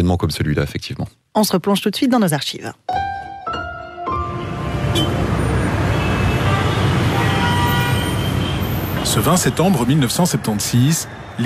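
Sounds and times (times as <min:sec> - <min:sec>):
speech: 0:00.0 - 0:03.0, 0:09.1 - 0:11.4
dense city traffic engine and road noise: 0:03.6 - 0:11.4
short car horn blasts: 0:04.8 - 0:08.7.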